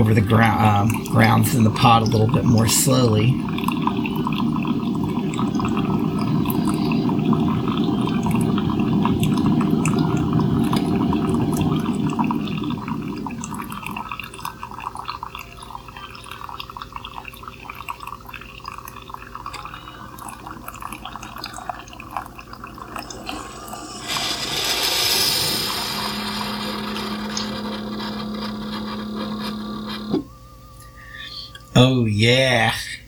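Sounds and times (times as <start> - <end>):
speech: 0.0 - 4.1
coffee maker with 60-ounce reservoir gurgling and hissing as it brews strong coffee: 0.0 - 30.3
low mechanical hum of coffee maker: 0.0 - 33.0
burst of steam from coffee maker: 23.0 - 28.2.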